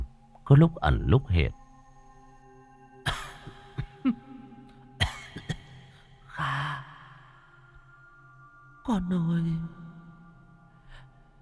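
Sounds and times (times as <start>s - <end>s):
speech: 0.5s - 1.6s, 8.9s - 9.8s
older woman coughing: 3.0s - 4.4s, 5.0s - 6.0s.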